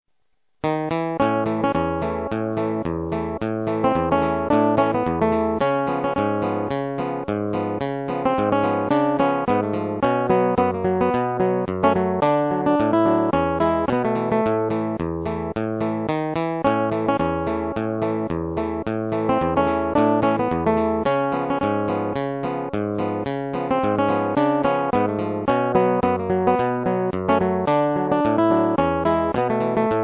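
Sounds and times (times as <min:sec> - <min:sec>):
nylon string guitar: 0:00.6 - 0:30.0.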